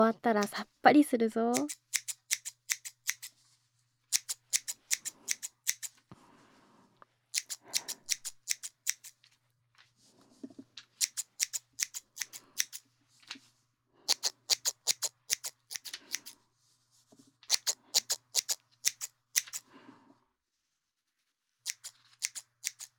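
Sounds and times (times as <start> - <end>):
speech: 0.0 - 1.9
scissors snipping through hair: 0.4 - 0.6, 1.5 - 3.3, 4.1 - 6.0, 7.3 - 9.2, 11.0 - 12.8, 14.1 - 16.4, 17.5 - 19.7, 21.6 - 22.9.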